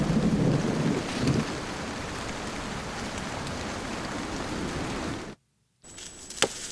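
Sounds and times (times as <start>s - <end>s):
deep rumble of thunder: 0.0s - 5.4s
heavy rain: 0.0s - 5.4s.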